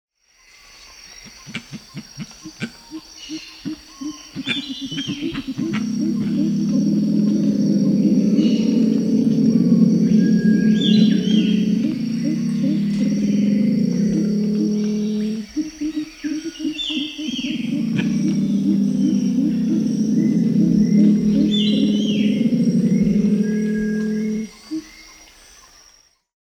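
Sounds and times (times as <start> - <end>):
pale-winged trumpeter Psophia leucoptera calling: 3.3 - 24.6.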